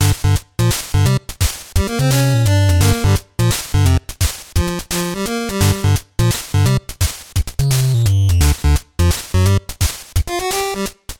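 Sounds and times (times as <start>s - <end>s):
eight-bit garage music from a game: 0.0s - 11.1s.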